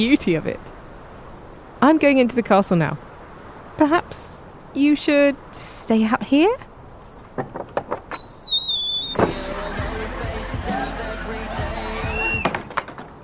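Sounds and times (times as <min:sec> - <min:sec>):
speech: 0:00.0 - 0:00.7, 0:01.8 - 0:03.1, 0:03.8 - 0:06.7
door creaking open and shut: 0:07.0 - 0:09.6, 0:12.0 - 0:13.2.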